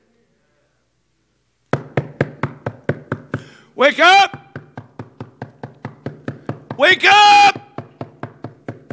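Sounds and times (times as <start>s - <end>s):
firm knocks on a door: 1.7s - 3.5s, 4.3s - 8.9s
speech: 3.8s - 4.3s, 6.8s - 7.4s.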